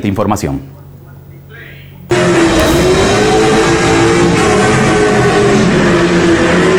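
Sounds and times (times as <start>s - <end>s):
speech: 0.0s - 0.8s
sports cars and motorcycles racing engines roaring at high revs: 2.1s - 6.7s.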